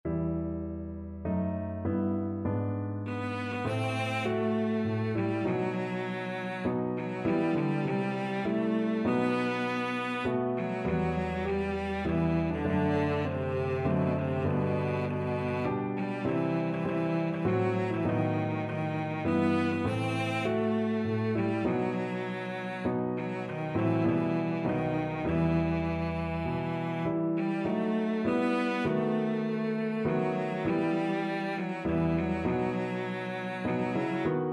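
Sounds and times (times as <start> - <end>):
cello: 0.1 - 34.5.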